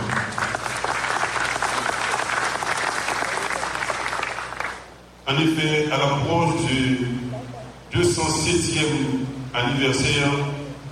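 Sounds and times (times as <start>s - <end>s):
large audience at a Haitian Protestant gathering clapping loudly: 0.0s - 4.9s
speech: 5.3s - 7.2s, 7.9s - 10.5s.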